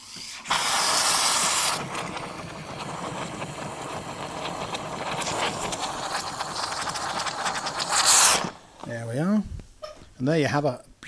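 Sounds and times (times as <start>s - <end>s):
coffee machine steam wand frothing milk: 0.0s - 8.8s
speech: 10.2s - 10.9s.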